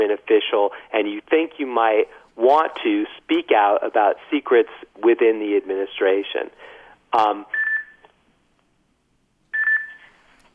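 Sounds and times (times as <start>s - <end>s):
speech: 0.0s - 7.6s
phone giving off electronic beeping tones: 7.5s - 8.0s, 9.5s - 10.2s.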